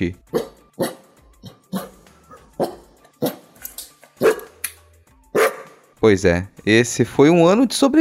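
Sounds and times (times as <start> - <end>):
speech: 0.0 - 0.4, 6.0 - 8.0
dog barking: 0.3 - 3.4, 4.2 - 4.5, 5.3 - 5.8.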